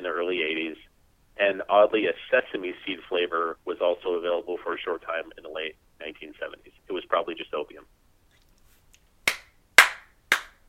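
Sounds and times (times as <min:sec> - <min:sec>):
speech: 0:01.5 - 0:08.0
hand claps: 0:09.2 - 0:10.6.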